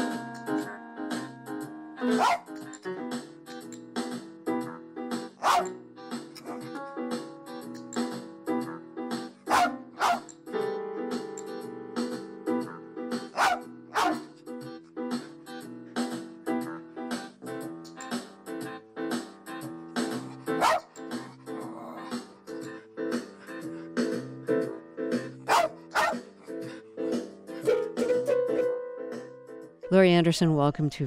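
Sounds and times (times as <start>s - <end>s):
electric keyboard on the floor played by a dog: 0.0s - 30.1s
blind dog barking and yipping: 2.1s - 2.6s, 5.4s - 5.8s, 6.4s - 6.7s, 9.5s - 10.3s, 13.3s - 14.4s, 20.5s - 21.0s, 25.4s - 26.3s, 27.6s - 28.7s
speech: 2.2s - 2.4s, 30.0s - 31.0s.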